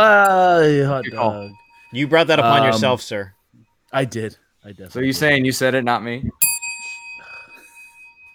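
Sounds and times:
small bell ringing: 0.0s - 2.9s, 6.4s - 8.3s
speech: 0.0s - 6.5s.

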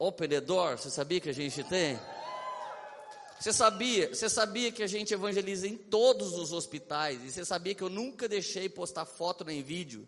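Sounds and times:
speech: 0.0s - 2.3s, 3.4s - 10.0s
large group from a church evangelism ministry shouting and cheering: 1.5s - 4.0s.

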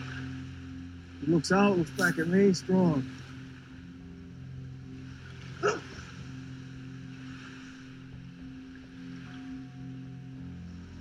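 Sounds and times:
rushing water: 0.0s - 10.9s
steady low drone of a boat engine: 0.0s - 10.9s
speech: 1.2s - 3.2s
search dog barking on a boat: 5.6s - 5.9s.

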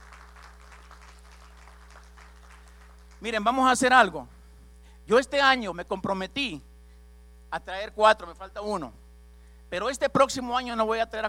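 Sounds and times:
audience clapping: 0.0s - 3.3s
low electrical hum: 0.0s - 11.2s
speech: 3.2s - 4.4s, 5.1s - 6.7s, 7.5s - 9.0s, 9.7s - 11.2s.

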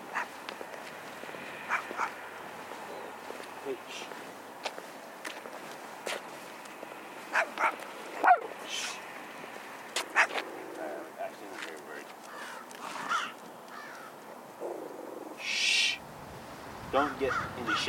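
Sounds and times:
footsteps: 0.0s - 14.5s
faint outdoor noise: 0.0s - 17.8s
small dog barking in short sharp yaps: 0.1s - 0.4s, 1.7s - 2.2s, 7.3s - 8.5s, 10.1s - 10.4s.

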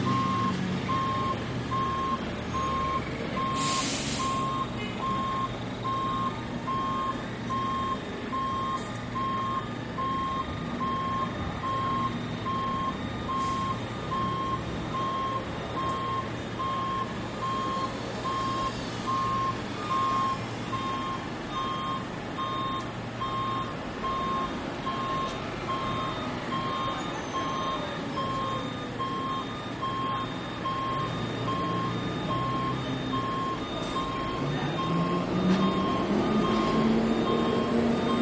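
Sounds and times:
high dashed alarm beeping at a railway station: 0.0s - 38.2s
rising engine whine: 0.0s - 38.2s
hissing bursts: 3.6s - 4.4s.

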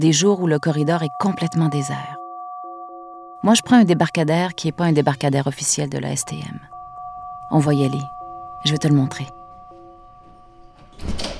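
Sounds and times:
speech: 0.0s - 2.2s, 3.4s - 6.8s, 7.5s - 9.4s, 11.0s - 11.2s
door swinging open with a short rush of noise: 10.8s - 11.3s.

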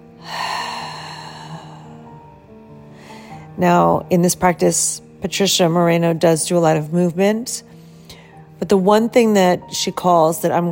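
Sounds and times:
breathing in and exhaling: 0.1s - 2.2s, 2.8s - 3.6s
speech: 3.6s - 7.8s, 8.6s - 10.7s.

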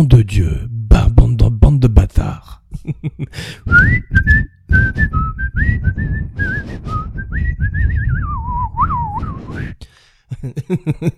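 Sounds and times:
speech: 0.0s - 0.7s, 1.7s - 5.0s, 10.6s - 11.1s
person whistling a melodic tune: 3.6s - 9.8s
laughter: 10.3s - 11.1s.

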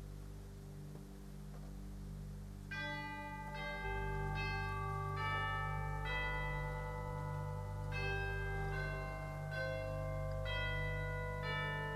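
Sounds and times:
sustained low pipe organ drone: 0.0s - 11.9s
bells built into an upgraded pipe organ ringing: 2.7s - 11.9s.

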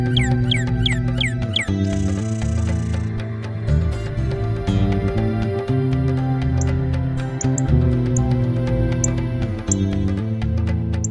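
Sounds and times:
Northern cardinal singing sharp downslurred whistles: 0.0s - 3.3s, 4.7s - 9.9s
low musical tones: 0.0s - 11.1s.

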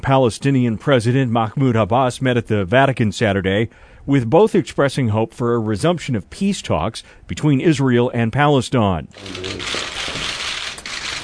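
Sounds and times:
speech: 0.0s - 9.9s
overlapping press camera shutter clicks: 9.2s - 11.2s.

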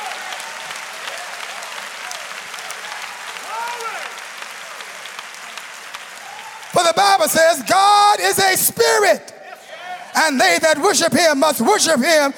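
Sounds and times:
audience clapping hands: 0.0s - 9.0s
speech: 7.0s - 9.3s, 10.2s - 12.3s.

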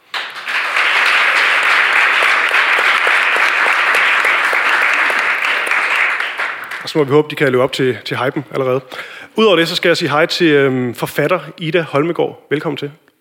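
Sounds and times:
audience applause for two actors: 0.0s - 7.3s
speech: 6.9s - 13.1s.

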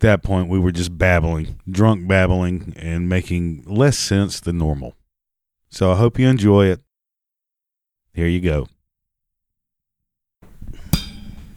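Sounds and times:
speech: 0.0s - 5.0s, 5.7s - 6.8s, 8.2s - 8.8s
metallic clink while setting up equipment: 10.9s - 11.5s.

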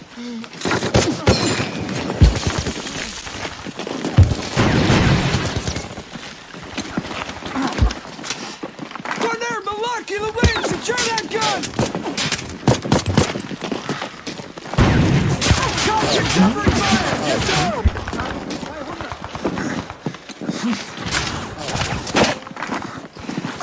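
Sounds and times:
rough rapid crackling: 0.6s - 23.6s
grenade explosion in a combat scene: 4.2s - 6.1s, 14.8s - 18.5s
people shouting: 15.4s - 18.0s.

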